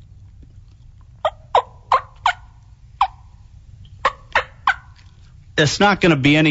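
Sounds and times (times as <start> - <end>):
wild turkey hens tree yelping while waking on the roost: 1.0 - 5.3
speech: 5.6 - 6.4.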